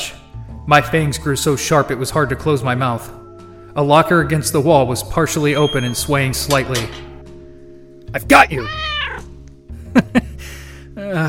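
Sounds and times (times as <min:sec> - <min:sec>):
speech: 0:00.7 - 0:03.2, 0:03.8 - 0:07.1, 0:08.1 - 0:08.9, 0:11.0 - 0:11.2
overweight creamsicle-colored cat meowing: 0:08.5 - 0:09.4.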